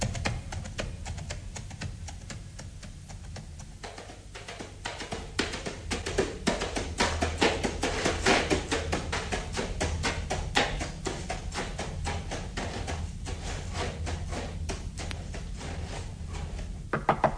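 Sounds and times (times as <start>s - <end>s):
low hum: 0.0s - 17.3s
knocking on a wooden door: 16.9s - 17.3s.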